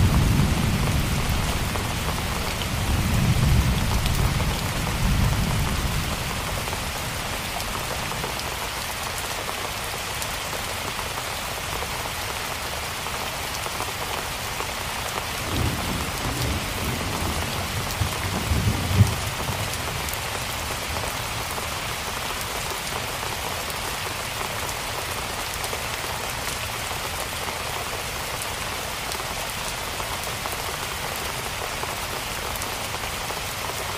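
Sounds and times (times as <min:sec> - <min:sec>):
low thunder rumbles: 0:00.0 - 0:07.3, 0:15.4 - 0:19.8
heavy rain: 0:00.0 - 0:33.9.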